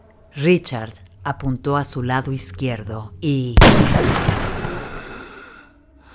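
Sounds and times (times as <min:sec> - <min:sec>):
speech: 0:00.4 - 0:04.5
single gunshot with long rumbling echo: 0:03.6 - 0:05.2.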